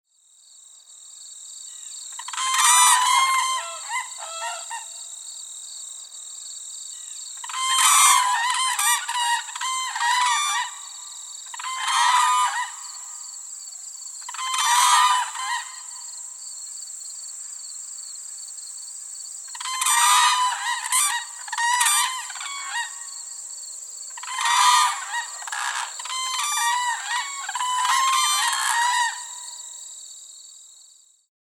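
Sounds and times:
whooping crane calling: 2.2s - 5.0s, 7.4s - 13.2s, 14.3s - 16.0s, 19.5s - 23.2s, 24.2s - 29.7s.

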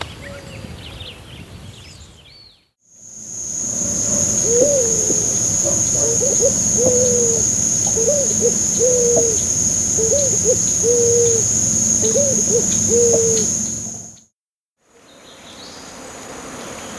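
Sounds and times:
white-crowned pigeon calling: 3.4s - 14.2s.

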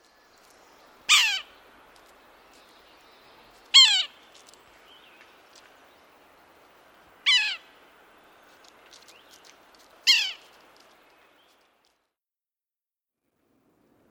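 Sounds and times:
Yellow-bellied Sapsucker giving nasal downslurred mewing calls: 1.1s - 1.5s, 3.7s - 4.2s, 7.2s - 7.7s, 10.0s - 10.5s.

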